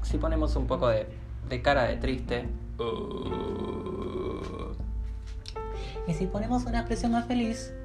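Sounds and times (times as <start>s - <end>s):
speech: 0.1s - 4.6s, 6.1s - 7.8s
low groggy croaky vocal sound: 2.8s - 4.8s.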